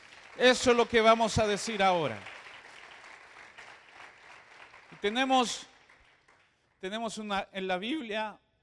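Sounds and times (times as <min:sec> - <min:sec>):
audience applauding: 0:00.0 - 0:06.8
speech: 0:00.4 - 0:02.3, 0:05.0 - 0:05.7, 0:06.8 - 0:08.4.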